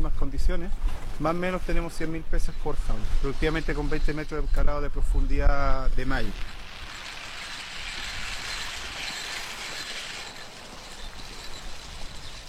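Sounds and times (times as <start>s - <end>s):
speech: 0.5s - 6.6s
rotating fish-feeding pipes clattering and whirring: 6.3s - 12.4s.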